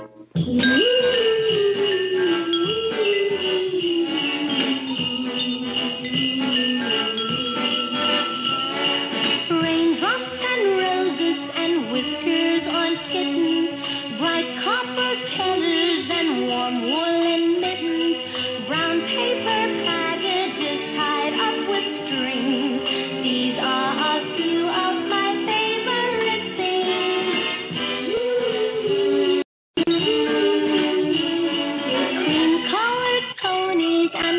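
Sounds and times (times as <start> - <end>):
Motown girl-group Christmas song with full band: 0.4 - 34.3.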